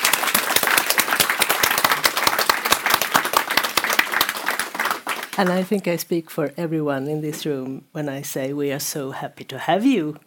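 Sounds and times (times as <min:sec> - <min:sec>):
audience applauding: 0:00.0 - 0:05.7
speech: 0:05.4 - 0:10.2.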